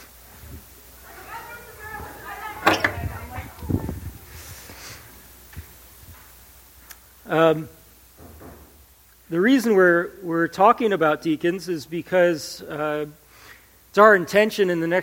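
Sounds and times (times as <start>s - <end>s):
faint chatter: 0.9s - 4.9s
church door swinging shut: 2.6s - 3.5s
speech: 7.3s - 7.8s, 9.3s - 13.2s, 14.0s - 15.0s.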